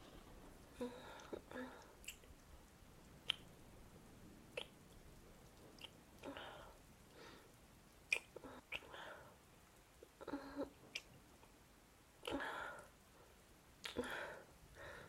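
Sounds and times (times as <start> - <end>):
quiet hiss: 0.0 - 15.0
wet kissing sounds of a boy and a girl making out in the rain: 3.2 - 3.5, 4.6 - 4.8, 8.1 - 8.9.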